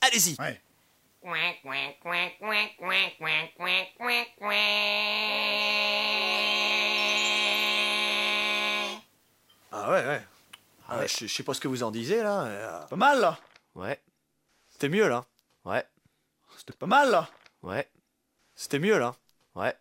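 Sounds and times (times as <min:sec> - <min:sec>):
speech: 0:00.1 - 0:07.0, 0:09.7 - 0:10.3, 0:10.9 - 0:14.1, 0:14.8 - 0:15.9, 0:16.6 - 0:17.9, 0:18.6 - 0:19.7
person imitating duck quacks: 0:01.2 - 0:09.0.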